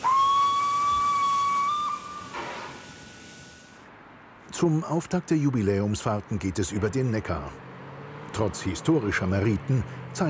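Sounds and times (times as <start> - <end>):
steam whistle of a Württemberg-design steam locomotive: 0.0 - 3.9
speech: 4.5 - 7.7, 8.4 - 10.2.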